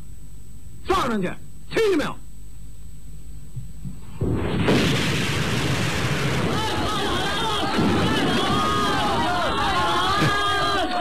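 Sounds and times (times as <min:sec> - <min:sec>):
speech: 0:01.0 - 0:02.2
artillery shell exploding among soldiers in a wartime scene: 0:04.1 - 0:09.2
many soldiers' voices shouting: 0:06.3 - 0:11.0.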